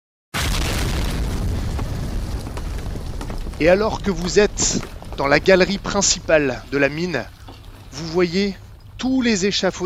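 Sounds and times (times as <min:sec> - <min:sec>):
deep heavy explosion in a mine: 0:00.4 - 0:08.0
scattered crackles: 0:00.4 - 0:09.8
speech: 0:03.6 - 0:09.8.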